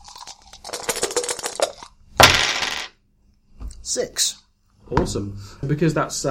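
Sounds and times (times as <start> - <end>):
dice rolled for a technology roll rattling across a table: 0.2 - 2.9
speech: 3.9 - 6.2.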